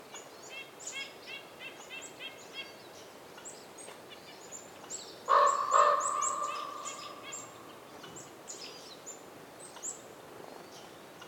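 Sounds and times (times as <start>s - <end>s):
small birds chirping in a winter forest: 0.1s - 11.2s
raven calling in a winter forest: 5.3s - 8.1s.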